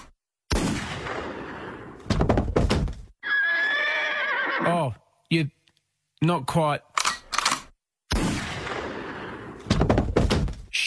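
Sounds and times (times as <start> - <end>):
sharp bangs and thuds: 0.5 - 3.1, 8.1 - 10.7
horse whinnying: 3.2 - 4.8
speech: 4.8 - 5.6, 6.2 - 6.9.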